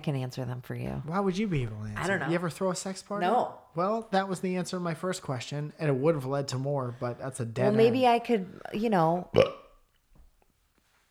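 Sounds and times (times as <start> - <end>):
speech: 0.0 - 9.6
burp: 9.3 - 9.8.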